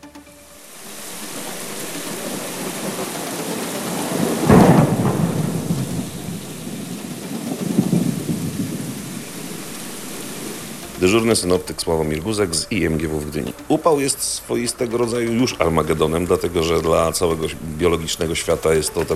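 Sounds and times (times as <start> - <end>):
steady heavy rain: 0.0 - 19.1
thunder crack and rumble: 3.9 - 9.4
speech: 11.0 - 19.1.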